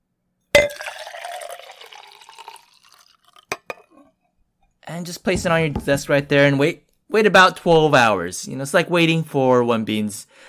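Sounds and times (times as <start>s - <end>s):
cold water splashing and gurgling into a cup: 0.6s - 4.0s
speech: 4.9s - 10.4s.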